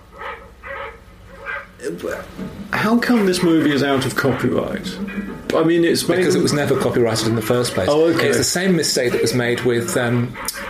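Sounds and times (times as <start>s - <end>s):
low steady hum: 0.0s - 10.6s
dog barking in a film: 0.1s - 1.8s
speech: 1.8s - 10.6s.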